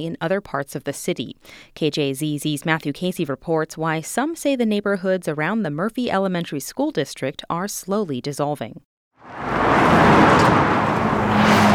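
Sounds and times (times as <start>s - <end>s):
speech: 0.0s - 10.6s
low engine hum: 9.2s - 11.7s
road traffic roar: 9.2s - 11.7s.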